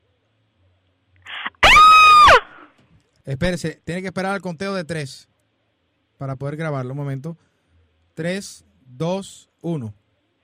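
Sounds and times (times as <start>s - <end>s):
woman screaming over the telephone: 1.3s - 2.6s
speech: 3.2s - 5.3s, 6.2s - 7.5s, 8.2s - 10.0s.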